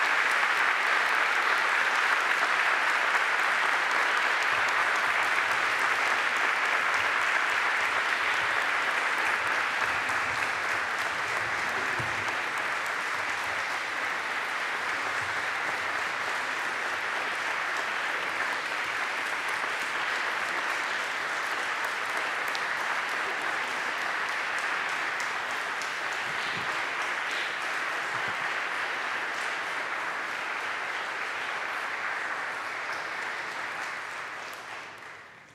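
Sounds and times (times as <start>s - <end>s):
audience applauding in a large room: 0.0s - 35.5s.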